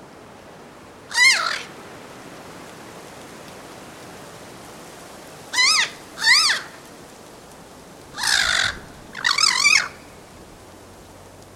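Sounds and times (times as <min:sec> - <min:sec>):
faint background hiss: 0:00.0 - 0:11.5
harsh nasal bird caws: 0:01.1 - 0:01.7, 0:05.5 - 0:06.7, 0:08.2 - 0:10.0.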